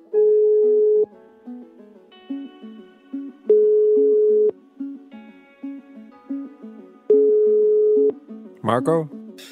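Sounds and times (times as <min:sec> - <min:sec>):
phone ringback tone beeps while calling a home: 0:00.2 - 0:01.1, 0:03.5 - 0:04.5, 0:07.1 - 0:08.2
speech: 0:08.7 - 0:09.5.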